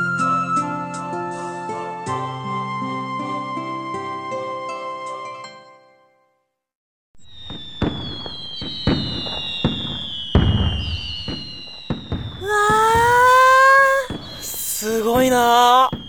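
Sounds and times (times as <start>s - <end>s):
fireworks exploding: 7.2s - 16.0s.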